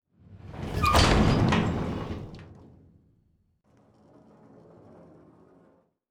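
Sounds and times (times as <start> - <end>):
helicopter door opening: 0.8 - 2.4.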